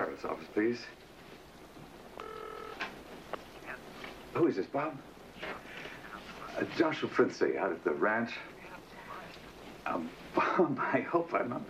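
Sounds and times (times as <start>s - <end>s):
speech: 0.2s - 1.0s, 3.3s - 5.6s, 6.6s - 8.5s, 9.9s - 11.6s
telephone dial tone: 2.2s - 3.0s.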